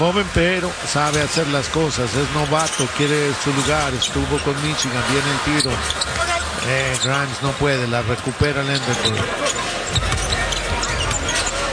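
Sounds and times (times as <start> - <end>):
commentator speaking: 0.0 - 9.5
speech: 0.0 - 10.1
crowd noise: 0.0 - 11.7
basketball dribbled with left and right hands during a game: 9.9 - 11.3.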